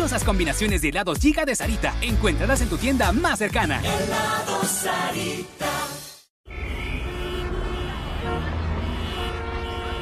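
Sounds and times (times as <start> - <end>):
speech: 0.0 - 5.9
busy street traffic rumble: 6.4 - 10.0
car horns honking: 6.5 - 10.0.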